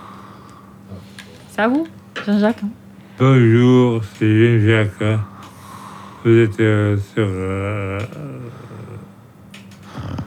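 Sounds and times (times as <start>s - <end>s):
speech: 1.6s - 5.3s, 6.2s - 8.9s
person imitating a cat purring: 7.2s - 9.1s, 9.9s - 10.2s.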